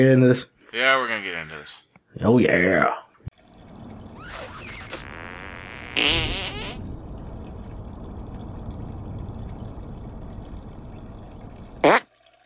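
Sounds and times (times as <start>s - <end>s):
speech: 0.0s - 3.0s
loud sputtering fart: 4.0s - 7.0s, 11.7s - 12.1s.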